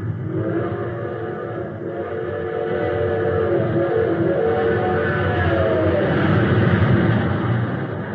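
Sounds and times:
whistle-like droning tone of a train: 0.0 - 6.5
train rumbling and picking up speed: 0.0 - 8.1.

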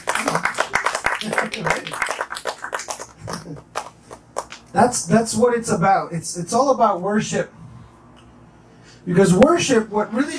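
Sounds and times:
crowd applauding: 0.0 - 4.6
speech: 1.2 - 2.4, 3.5 - 3.8, 4.7 - 7.6, 9.1 - 10.3.

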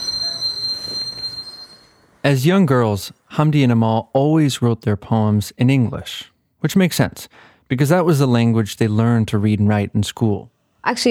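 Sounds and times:
train wheels squealing while braking to a halt: 0.0 - 2.2
speech: 2.2 - 11.1.

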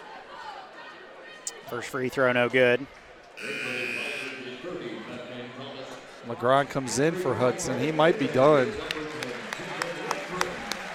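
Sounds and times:
speech: 1.7 - 3.8, 4.7 - 9.0
crowd applause and standing ovation at a high school basketball game: 7.6 - 10.9.

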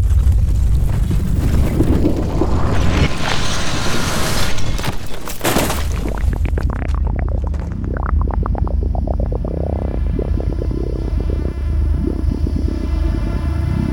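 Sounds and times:
cinematic drone: 0.0 - 4.9, 6.1 - 13.9
deep constant rumble: 0.0 - 13.9
quick pulsing synth chirps and sweeps: 7.1 - 13.9.

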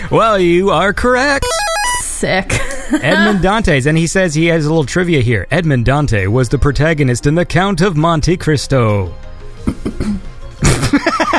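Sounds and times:
speech: 0.1 - 10.2
laughter: 2.5 - 3.6, 10.6 - 11.3
person clearing throat: 2.6 - 3.5, 9.7 - 10.9.

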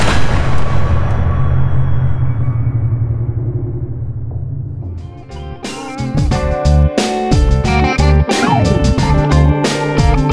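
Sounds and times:
gunshots of riders shooting the wounded and dead around a wagon: 0.0 - 2.0
loud low rumble: 0.0 - 6.5, 7.8 - 10.2.

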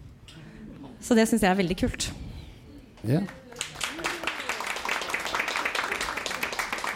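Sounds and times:
speech: 1.0 - 2.2, 3.0 - 3.4
group of people clapping: 3.1 - 6.9.

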